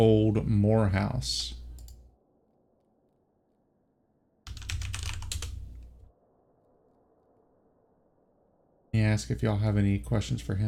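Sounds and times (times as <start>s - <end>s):
speech: 0.0s - 1.6s, 9.0s - 10.6s
typing on a computer keyboard: 4.5s - 5.9s.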